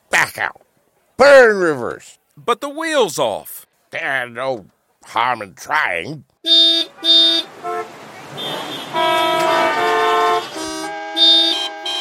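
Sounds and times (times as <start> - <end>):
speech: 0.4 - 0.6, 1.2 - 6.8
many car horns honking: 6.4 - 11.9.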